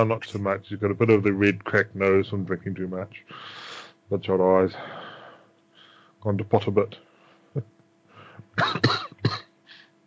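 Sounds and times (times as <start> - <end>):
speech: 0.0 - 5.0, 6.2 - 7.7, 8.6 - 9.4
smoker's cough from a man, a former pilot in poor condition: 8.4 - 9.6.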